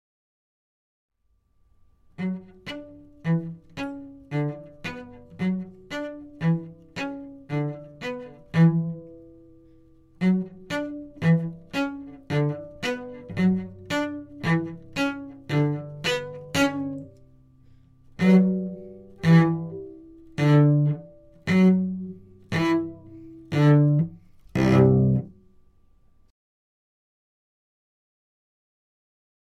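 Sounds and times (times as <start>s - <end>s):
cello: 2.1s - 25.5s.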